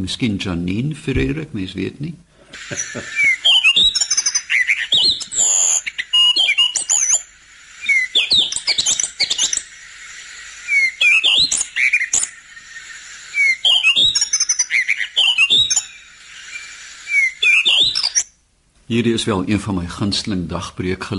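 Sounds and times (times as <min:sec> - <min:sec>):
speech: 0:00.0 - 0:03.4, 0:18.9 - 0:21.1
laughter: 0:02.5 - 0:03.4
Cape robin-chat singing: 0:02.6 - 0:18.4.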